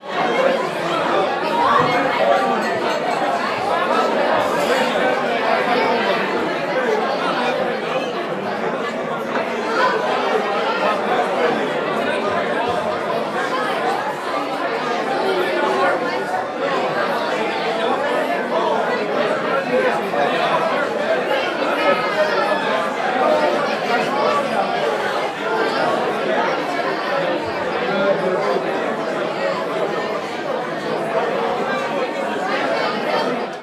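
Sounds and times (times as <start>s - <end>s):
large bar crowd ambience: 0.0s - 33.6s.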